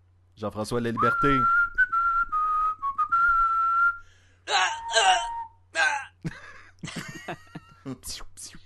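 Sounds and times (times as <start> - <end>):
speech: 0.4 - 1.6
person whistling a short melody: 1.0 - 4.0, 4.6 - 5.6
laughter: 6.2 - 8.0.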